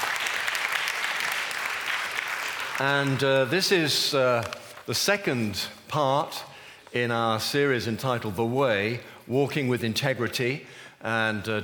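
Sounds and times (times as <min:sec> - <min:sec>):
audience applause for the worship team: 0:00.0 - 0:03.5
speech: 0:02.8 - 0:11.6.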